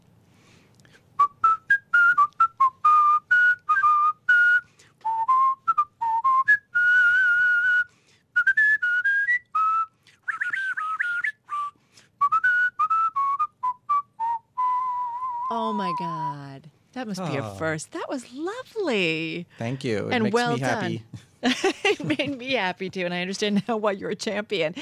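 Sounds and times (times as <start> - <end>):
person whistling a lively song melody: 1.2 - 15.6, 20.3 - 20.9
speech: 15.8 - 24.8
laughter: 20.3 - 23.0.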